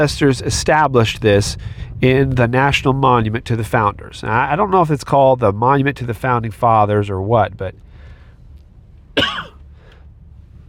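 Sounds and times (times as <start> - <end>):
speech: 0.0 - 7.8
low hum: 0.0 - 10.6
sharp throaty cough: 9.2 - 9.6.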